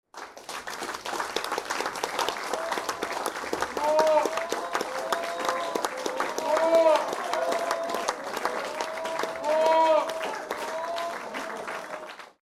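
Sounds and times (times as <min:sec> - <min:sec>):
small indoor crowd applauding: 0:00.1 - 0:12.4
small indoor crowd shouting for more: 0:03.7 - 0:12.1.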